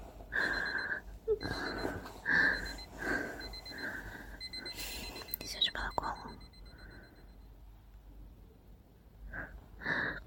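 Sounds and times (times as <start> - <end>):
alarm clock ringing in high electronic beeps: 0.3 - 7.6.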